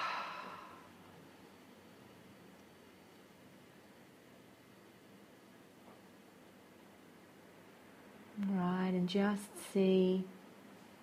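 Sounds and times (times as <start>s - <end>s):
soft breathy exhale: 0.0s - 0.9s
speech: 8.4s - 10.4s.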